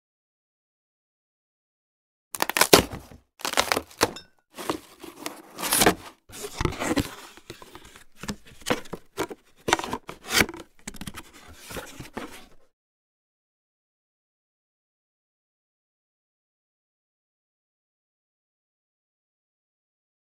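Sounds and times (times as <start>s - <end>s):
cardboard box: 2.4s - 12.7s.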